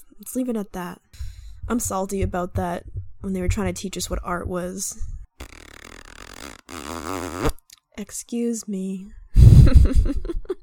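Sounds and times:
speech: 0.4s - 1.0s, 1.7s - 5.1s, 8.0s - 10.4s
loud fart: 5.4s - 7.6s.

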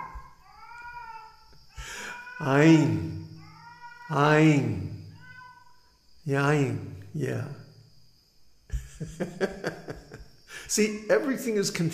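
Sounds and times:
cat yowling outdoors: 0.0s - 5.8s
speech: 2.4s - 3.2s, 4.1s - 5.0s, 6.3s - 7.6s, 9.0s - 10.0s, 10.7s - 11.9s
laughter: 8.7s - 10.4s.

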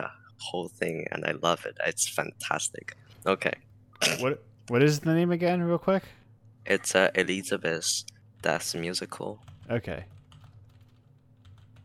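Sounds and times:
speech: 0.0s - 10.2s
typing on a computer keyboard: 9.4s - 11.8s.

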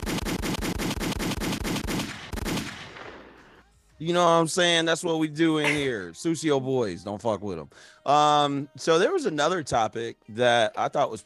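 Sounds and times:
rapid automatic gunfire: 0.0s - 3.3s
gunshots: 0.0s - 3.6s
speech: 4.0s - 11.2s.

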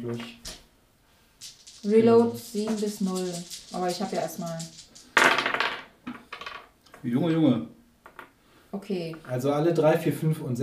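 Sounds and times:
speech: 0.0s - 0.5s, 1.8s - 4.8s, 7.0s - 7.8s, 8.7s - 10.6s
dice clattering on a hard table: 1.4s - 6.7s, 8.0s - 8.3s.

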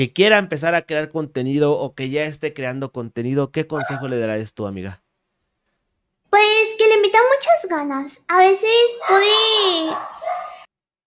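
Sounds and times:
speech: 0.0s - 5.0s, 6.3s - 10.5s
dog barking: 3.8s - 4.2s, 8.9s - 10.7s.

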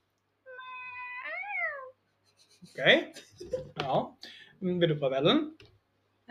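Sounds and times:
person imitating a cat meowing: 0.5s - 2.0s
speech: 2.6s - 5.7s.

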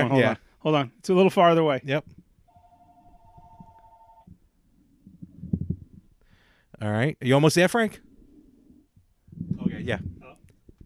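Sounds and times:
speech: 0.1s - 2.2s, 6.8s - 8.0s, 9.5s - 10.2s
telephone ringing with an electronic tone: 2.5s - 4.3s.

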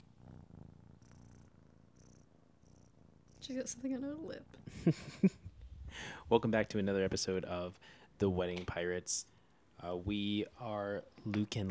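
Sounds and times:
kitten purring: 0.0s - 5.9s
speech: 3.4s - 11.7s.

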